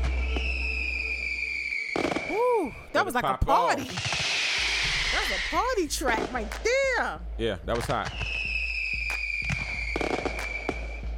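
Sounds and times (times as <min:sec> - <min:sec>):
fireworks cracking and popping: 0:00.0 - 0:02.5, 0:03.8 - 0:07.0, 0:07.7 - 0:11.0
speech: 0:02.3 - 0:04.2, 0:05.1 - 0:08.3.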